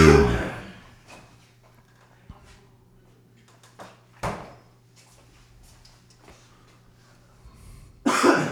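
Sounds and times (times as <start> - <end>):
person clearing their throat: 0.0 - 0.8, 8.1 - 8.5
person coughing: 0.0 - 0.8, 8.1 - 8.5.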